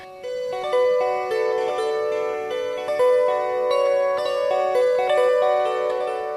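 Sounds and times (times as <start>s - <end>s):
melody played on a small kantele: 0.0s - 6.3s.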